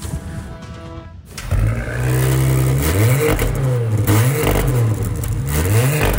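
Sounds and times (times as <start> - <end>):
Porsche car engine starting and revving: 1.3 - 6.1.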